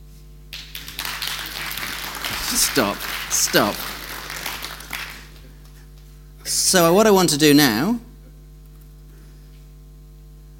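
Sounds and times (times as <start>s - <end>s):
faint low electrical hum: 0.0s - 10.5s
audience applause: 0.5s - 6.1s
speech: 2.5s - 4.0s, 6.5s - 8.1s.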